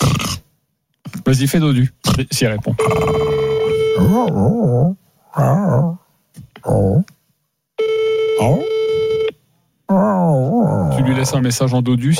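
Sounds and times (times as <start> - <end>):
speech: 1.3 - 3.3, 4.0 - 7.2, 8.4 - 8.8, 9.9 - 12.1
phone call ringing tone: 2.8 - 4.3, 7.8 - 9.4.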